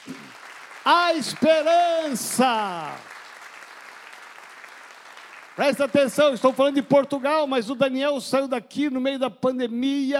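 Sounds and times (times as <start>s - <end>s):
congregation clapping: 0.0s - 7.6s
speech: 0.8s - 3.1s, 5.6s - 10.1s.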